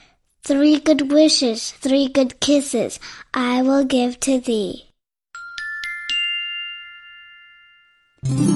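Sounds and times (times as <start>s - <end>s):
speech: 0.5s - 4.9s, 8.2s - 8.5s
small bell ringing for tea: 5.4s - 8.2s.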